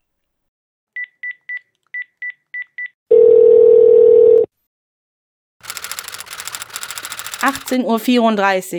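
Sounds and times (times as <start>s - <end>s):
loud steady telephone tone: 3.1s - 4.5s
speech: 7.4s - 8.7s.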